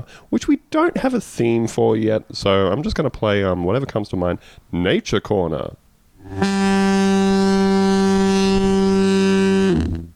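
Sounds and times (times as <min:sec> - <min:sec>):
speech: 0:00.0 - 0:06.6
loud deep foghorn blast: 0:06.2 - 0:10.1.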